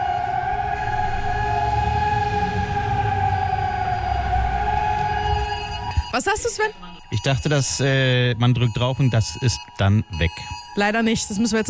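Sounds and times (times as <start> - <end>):
warning sirens wailing across the city: 0.0 - 9.2
speech: 6.2 - 11.6.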